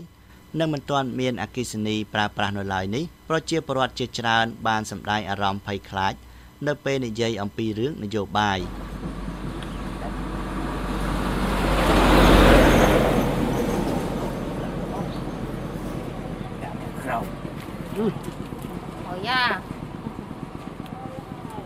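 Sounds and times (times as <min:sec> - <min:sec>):
speech: 0:00.0 - 0:08.9
large vehicle travelling along a dusty dirt road in a rural commune: 0:08.6 - 0:21.6.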